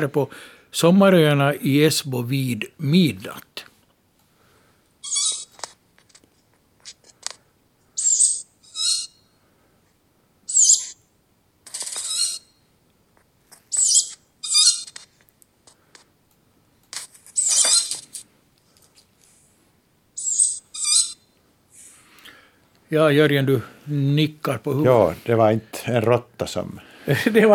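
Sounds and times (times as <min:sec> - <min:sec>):
speech: 0:00.0 - 0:03.7, 0:22.9 - 0:27.5
tawny owl chicks giving harsh hissing begging calls: 0:05.0 - 0:05.6, 0:08.0 - 0:09.2, 0:10.5 - 0:11.0, 0:13.7 - 0:15.0, 0:17.4 - 0:18.0, 0:20.2 - 0:21.2
laughter: 0:27.1 - 0:27.5.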